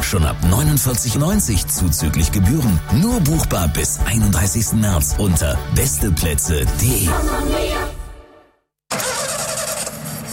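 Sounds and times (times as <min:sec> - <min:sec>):
speech: 0:00.1 - 0:07.9
car engine cranking but failing to start: 0:08.9 - 0:10.3.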